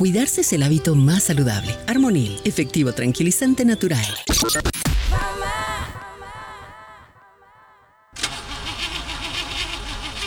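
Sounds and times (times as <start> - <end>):
speech: 0.0 - 5.7
car engine struggling to start, cranking and sputtering: 8.2 - 10.2.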